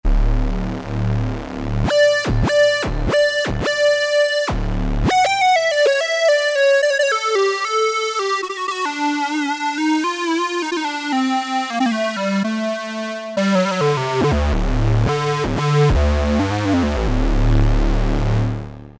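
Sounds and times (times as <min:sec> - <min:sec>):
Yamaha TG77 synthesizer square mono factory preset: 0:00.0 - 0:18.9.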